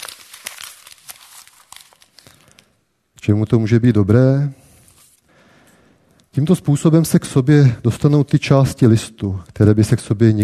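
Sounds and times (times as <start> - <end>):
sheet of paper being crumpled into a ball: 0.0 - 2.8, 4.8 - 5.2
speech: 3.2 - 4.6, 6.4 - 10.4.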